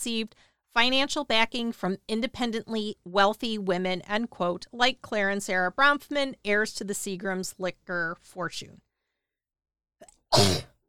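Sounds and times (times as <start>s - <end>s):
speech: 0.0s - 8.9s, 10.0s - 10.7s
forceful sneeze: 10.3s - 10.8s.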